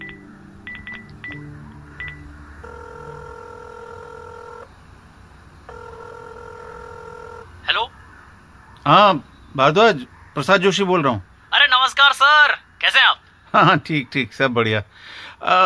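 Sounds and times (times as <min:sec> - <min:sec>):
phone keypad beeps dialing a number: 0:00.0 - 0:01.4, 0:02.0 - 0:02.2
phone line ringing tone: 0:00.0 - 0:04.7, 0:05.7 - 0:07.6
speech: 0:08.9 - 0:11.3, 0:11.9 - 0:15.6.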